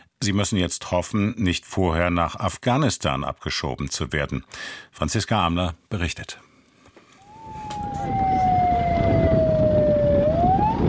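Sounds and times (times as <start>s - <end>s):
speech: 0.2s - 6.5s
police car siren wailing: 7.2s - 10.8s.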